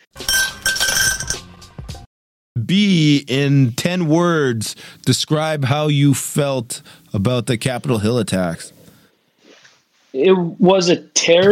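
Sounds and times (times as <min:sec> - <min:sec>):
ice cubes clinking and rattling against a glass: 0:00.2 - 0:01.5
speech: 0:02.6 - 0:08.8, 0:10.1 - 0:11.5.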